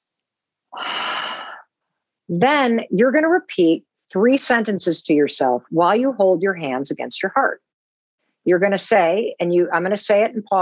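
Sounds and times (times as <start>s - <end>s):
deep breath in during a guided breathing exercise: 0.8s - 1.6s
speech: 2.3s - 7.7s, 8.4s - 10.6s.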